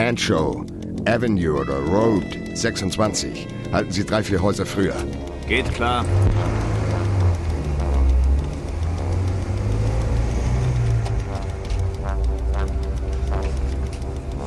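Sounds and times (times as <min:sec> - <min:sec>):
speech: 0:00.0 - 0:06.7
car engine running while the car waits at a house: 0:03.6 - 0:14.4.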